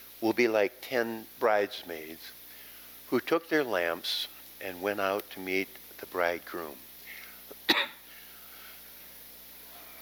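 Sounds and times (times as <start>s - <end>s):
speech: 0.2s - 2.4s, 3.1s - 6.8s, 7.7s - 8.0s
single sharp cough: 7.6s - 8.1s.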